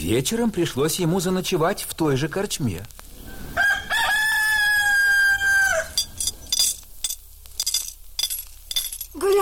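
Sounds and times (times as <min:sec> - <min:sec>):
speech: 0:00.1 - 0:03.0
rooster crowing: 0:03.3 - 0:06.2
faint clinking: 0:05.8 - 0:09.4.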